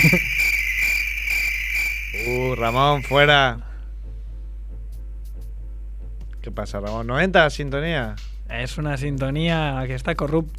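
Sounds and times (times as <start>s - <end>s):
cricket chirping: 0.0s - 3.5s
speech: 0.1s - 0.3s, 2.5s - 3.7s, 6.5s - 10.5s.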